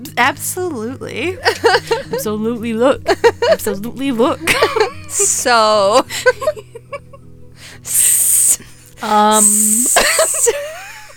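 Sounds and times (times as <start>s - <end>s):
speech: 0.1s - 6.7s, 9.0s - 10.8s
laughter: 1.4s - 2.3s, 3.0s - 7.2s, 10.0s - 11.1s
snake hissing: 7.6s - 10.5s.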